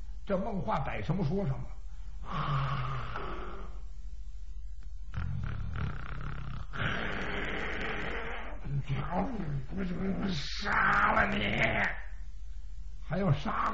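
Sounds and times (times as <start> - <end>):
speech: 0.3 - 3.4, 8.8 - 11.9, 13.1 - 13.7
voice imitating loud rasping snoring: 2.2 - 3.8, 5.1 - 10.2.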